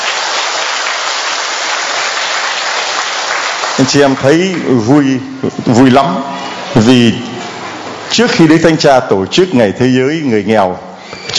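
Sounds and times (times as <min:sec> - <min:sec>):
loud applause from audience: 0:00.0 - 0:04.8
speech: 0:03.8 - 0:07.4, 0:08.1 - 0:11.3.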